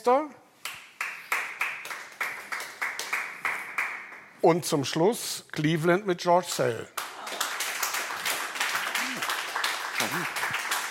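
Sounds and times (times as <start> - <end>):
speech: 0.0 - 0.4, 4.4 - 7.0
scattered applause from a small audience: 0.6 - 4.4, 6.5 - 10.8.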